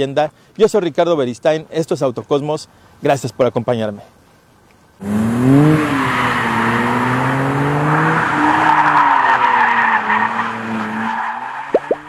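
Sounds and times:
speech: 0.0 - 4.2, 5.0 - 5.8
broad rushing skidding noise of tires: 4.2 - 12.0
Dodge Charger engine roaring while driven hard: 5.0 - 12.0.

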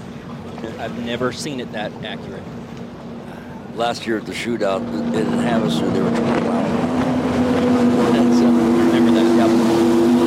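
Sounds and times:
small racing powerboat engine droning at speed: 0.0 - 10.2
water noise around racing powerboat: 0.0 - 10.2
speech: 0.6 - 2.7, 3.8 - 7.0, 7.6 - 9.7
rushing wind: 4.4 - 10.2.

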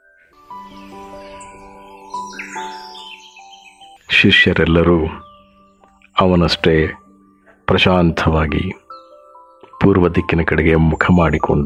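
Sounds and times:
birds chirping all around at sunrise: 0.0 - 11.6
speech: 4.2 - 5.2, 6.2 - 7.0, 7.7 - 8.8, 9.8 - 11.6.

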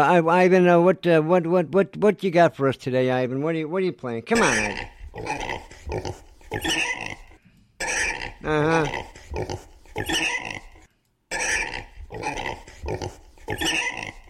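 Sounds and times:
speech: 0.0 - 7.2, 8.4 - 10.6, 12.1 - 13.8
pig grunting and oinking: 4.3 - 14.2.

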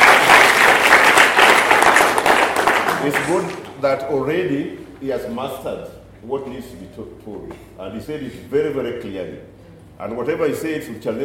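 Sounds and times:
audience clapping: 0.0 - 3.8
speech: 3.0 - 11.2.

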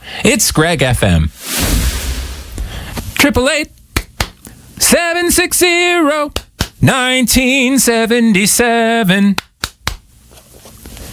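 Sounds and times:
speech: 0.2 - 1.8, 3.2 - 3.8, 4.8 - 9.5
low steady hum: 1.2 - 5.4
single sharp hand clap: 4.0 - 4.4, 6.3 - 6.8, 9.4 - 10.0.

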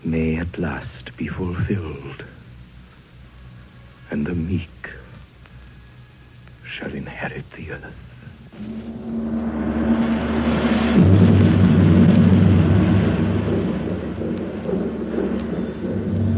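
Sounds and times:
speech: 0.1 - 2.4, 4.1 - 4.8, 6.8 - 9.5
deep rolling thunder from an approaching storm: 8.6 - 16.3.

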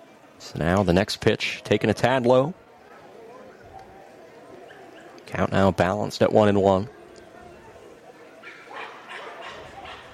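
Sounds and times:
constant wash of noise: 0.0 - 10.1
speech: 0.4 - 2.6, 5.3 - 7.0
small dog yapping in high-pitched barks: 8.4 - 10.1.

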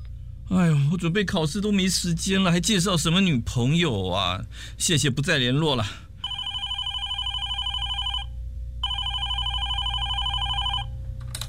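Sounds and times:
speech: 0.5 - 6.1
telephone ringing in warbling electronic bursts: 6.2 - 10.9.

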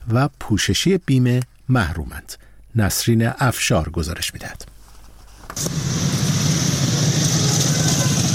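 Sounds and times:
speech: 0.1 - 4.7, 5.6 - 6.3
faint high motorcycle engine whine: 5.6 - 8.3
motorcycle engine catching on a city street in Iran: 5.6 - 8.3.

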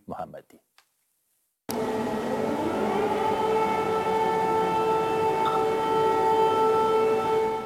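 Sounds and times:
civil defense air raid siren wailing: 1.7 - 7.6.

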